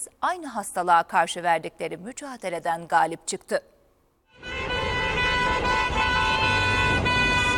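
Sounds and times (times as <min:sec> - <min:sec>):
speech: 0:00.1 - 0:03.8
several car horns honking together in a convoy: 0:04.3 - 0:07.5.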